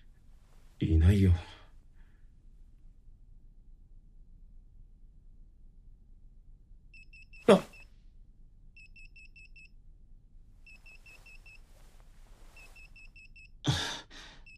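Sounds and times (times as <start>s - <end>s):
speech: 0.8s - 1.5s, 7.5s - 7.7s
electronic alarm beeping in high thin tones: 7.0s - 7.9s, 8.8s - 9.7s, 10.7s - 11.7s, 12.5s - 13.6s.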